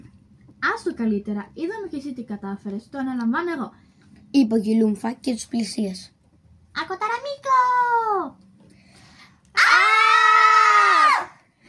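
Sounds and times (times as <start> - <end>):
speech: 0.7 - 6.2, 6.8 - 8.4
loud sustained alien-like shriek: 9.6 - 11.4.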